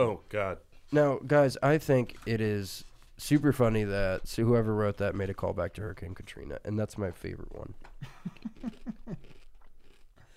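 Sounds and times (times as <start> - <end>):
speech: 0.0 - 9.4
crisp snack being chewed into a microphone: 7.8 - 10.3.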